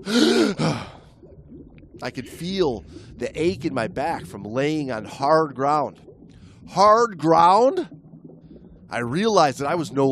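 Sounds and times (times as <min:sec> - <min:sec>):
speech: 0:00.0 - 0:00.9, 0:02.0 - 0:06.1, 0:06.7 - 0:08.0, 0:08.9 - 0:10.1
person gasping startled upon waking: 0:00.0 - 0:01.1.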